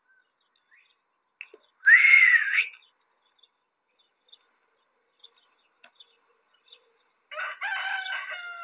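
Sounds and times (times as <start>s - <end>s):
rooster crowing: 7.3s - 8.6s.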